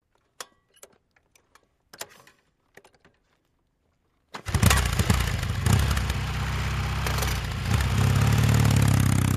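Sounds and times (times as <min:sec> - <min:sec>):
Norton motorcycle kick start: 0:04.4 - 0:09.2.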